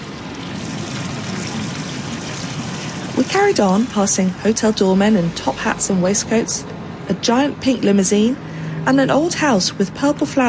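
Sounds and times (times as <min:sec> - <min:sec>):
water trickling beside a path in a city park: 0:00.0 - 0:06.6
speech: 0:03.2 - 0:10.4.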